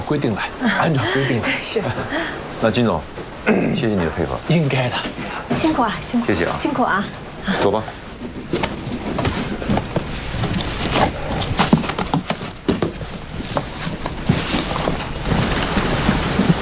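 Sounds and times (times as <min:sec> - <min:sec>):
steady heavy rain pouring down: 0:00.0 - 0:16.6
speech: 0:00.1 - 0:08.0
laughter: 0:00.6 - 0:02.4.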